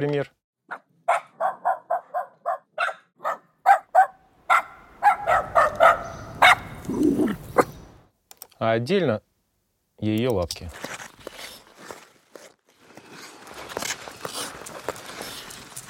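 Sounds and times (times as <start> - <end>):
speech: 0.0 - 0.4, 8.6 - 9.3, 10.0 - 10.9
small running dog barking: 0.7 - 7.8.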